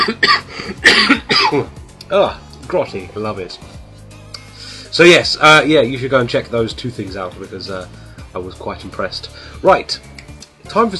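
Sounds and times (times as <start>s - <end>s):
person coughing: 0.0s - 1.8s
speech: 0.0s - 3.8s, 4.9s - 10.1s, 10.7s - 10.9s.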